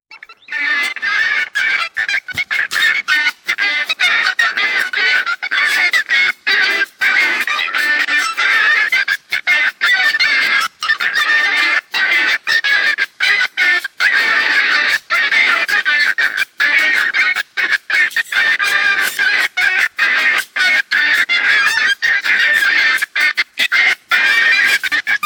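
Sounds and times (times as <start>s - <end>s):
mallard ducks quacking: 0.1s - 25.2s.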